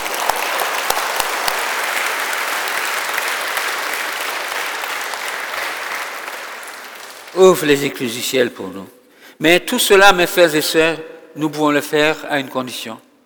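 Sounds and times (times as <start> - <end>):
audience applauding during a prayer: 0.0 - 8.0
speech: 7.4 - 13.1.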